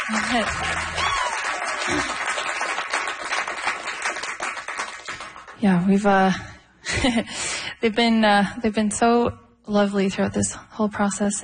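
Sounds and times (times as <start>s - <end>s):
people whooping and cheering: 0.0s - 2.6s
crowd applauding two musicians: 0.0s - 5.6s
speech: 0.1s - 1.2s, 1.8s - 2.2s, 5.6s - 11.4s.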